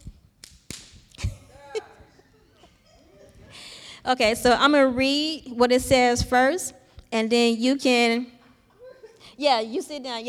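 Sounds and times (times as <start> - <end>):
whip used as a prop in a demonstration cracking: 0.0 - 1.3
speech: 4.1 - 8.4, 9.4 - 10.2.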